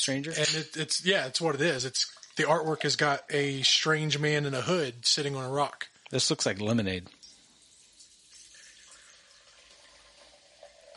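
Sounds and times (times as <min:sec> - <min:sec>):
speech: 0:00.0 - 0:07.2
beer pouring into a glass: 0:00.5 - 0:04.8, 0:06.6 - 0:10.9.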